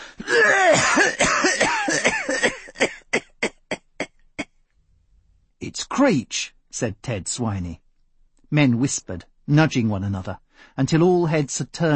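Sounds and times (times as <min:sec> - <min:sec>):
man giving wet wheezing coughs: 0:00.2 - 0:04.5
speech: 0:06.0 - 0:07.8, 0:08.5 - 0:11.9.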